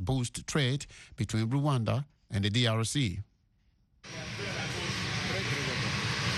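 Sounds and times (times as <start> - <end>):
speech: 0.0 - 3.3
Boeing 737 jet airliner engine roar: 4.1 - 6.3.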